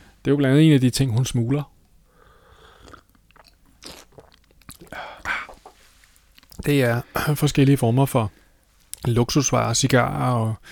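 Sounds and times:
speech: 0.2s - 1.7s, 6.6s - 8.4s, 9.0s - 10.6s
person sipping a drink: 2.2s - 6.6s
soft wet slurping and swallowing while drinking: 2.5s - 6.7s.

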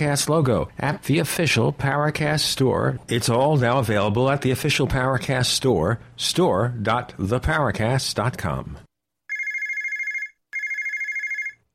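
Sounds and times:
speech: 0.0s - 8.9s
telephone ringing with an electronic trilling bell: 9.3s - 11.7s.

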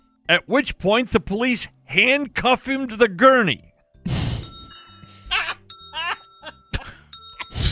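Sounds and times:
speech: 0.3s - 4.2s
bright bell dinging: 4.4s - 7.7s.

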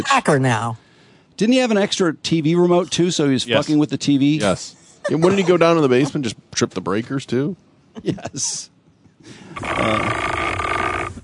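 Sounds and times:
speech: 0.0s - 0.8s, 1.4s - 10.4s
long rough throaty male burp: 9.6s - 10.5s.

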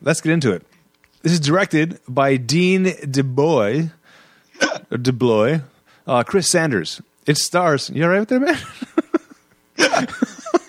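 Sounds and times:
speech: 0.0s - 4.0s, 4.9s - 8.8s
person hiccuping: 4.6s - 4.9s
laughter: 8.5s - 10.6s.

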